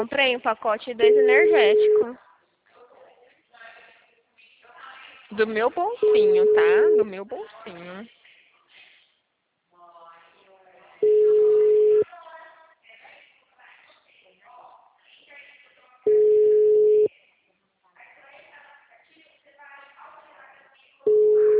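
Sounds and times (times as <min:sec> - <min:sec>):
speech: 0:00.0 - 0:02.3, 0:05.3 - 0:08.2
telephone busy tone after a dropped call: 0:01.0 - 0:02.0, 0:06.0 - 0:07.2, 0:11.0 - 0:12.0, 0:16.1 - 0:17.1, 0:21.1 - 0:21.5.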